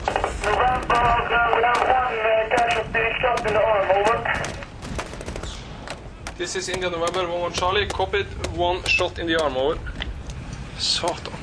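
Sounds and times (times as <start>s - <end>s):
thin band-limited voice over military radio static: 0.0s - 4.6s
sharp clicks and pops on a military radio transmission: 0.0s - 11.4s
speech: 6.4s - 9.9s, 10.8s - 11.4s.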